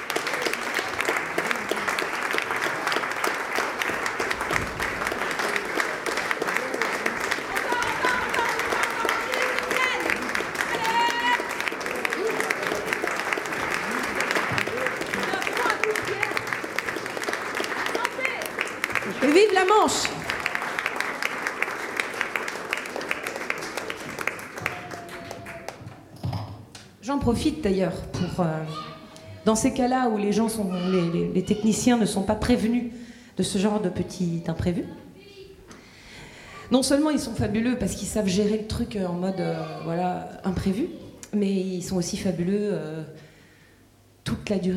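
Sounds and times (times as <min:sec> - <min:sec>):
sustained audience applause greeting a performer: 0:00.0 - 0:26.1
audience whistles and cheers: 0:24.6 - 0:25.8
speech: 0:27.3 - 0:35.0, 0:36.7 - 0:43.3, 0:44.5 - 0:44.7.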